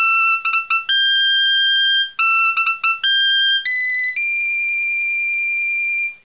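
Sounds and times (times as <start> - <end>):
kaval flute playing: 0.0 - 5.0.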